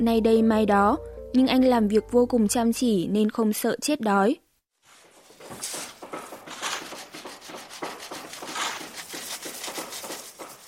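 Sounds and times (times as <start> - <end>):
speech: 0.0 - 4.4
chiseling and scraping against a hard surface at a construction site: 5.0 - 10.6.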